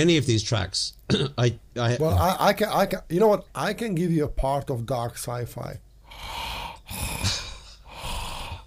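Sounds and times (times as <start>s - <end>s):
speech: 0.0s - 7.4s
person imitating ominous mechanical sci-fi breathing: 6.0s - 8.6s.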